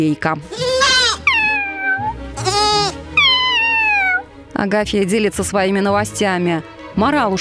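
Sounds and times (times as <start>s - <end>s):
speech: 0.0s - 0.7s, 4.6s - 7.3s
two newborn goat kids bleating in a small hut: 0.5s - 4.2s.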